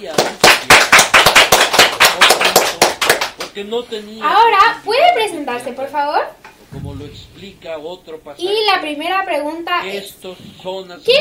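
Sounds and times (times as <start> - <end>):
small audience applauding an invited guest specialist: 0.2 - 3.4
speech: 3.6 - 11.1.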